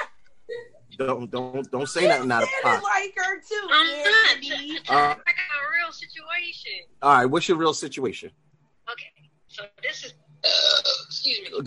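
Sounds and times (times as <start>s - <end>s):
speech: 1.0s - 5.3s, 5.9s - 8.5s, 11.3s - 11.6s
loud raspy burp: 10.4s - 11.0s
short throaty vocal bursts: 10.4s - 11.0s.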